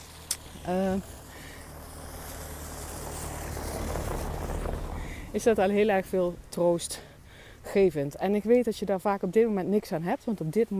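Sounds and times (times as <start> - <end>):
heavy truck engine rumbling as it approaches: 0.0 - 8.2
wind buffeting: 0.1 - 8.2
speech: 0.6 - 1.2, 5.3 - 10.7.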